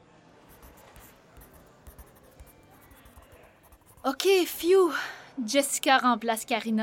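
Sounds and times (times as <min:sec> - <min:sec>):
pen scratching on paper: 0:00.5 - 0:04.6
speech: 0:04.1 - 0:06.8.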